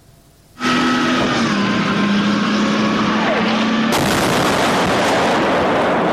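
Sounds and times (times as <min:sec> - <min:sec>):
heavy droning roar: 0:00.6 - 0:06.1
explosion in a war-torn city: 0:03.9 - 0:06.1.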